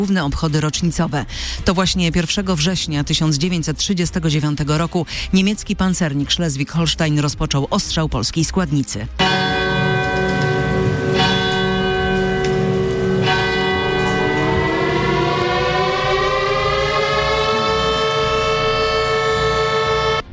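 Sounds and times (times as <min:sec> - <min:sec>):
speech: 0:00.0 - 0:09.4
bell strikes at Westerplatte commemoration: 0:09.2 - 0:20.2
air raid siren wailing at Westerplatte Poland at World War II commemoration: 0:09.2 - 0:20.3.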